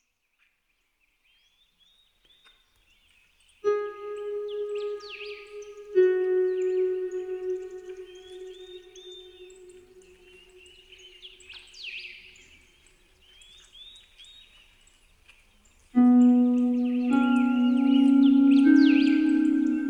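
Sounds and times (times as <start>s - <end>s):
relaxing spa music on Celtic harp: 3.7s - 10.8s, 16.0s - 19.8s
birds: 3.7s - 12.5s, 16.0s - 19.8s.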